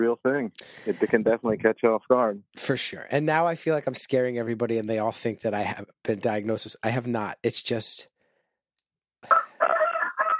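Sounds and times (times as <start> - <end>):
speech: 0.0 - 8.1
rooster crowing a loud cock-a-doodle-doo: 9.3 - 10.3.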